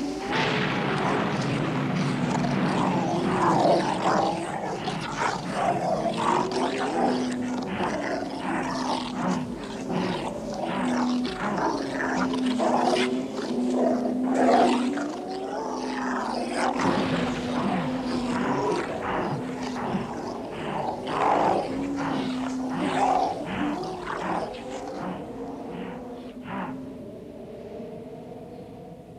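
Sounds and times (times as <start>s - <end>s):
wolves baring teeth and snarling: 0.1s - 26.8s.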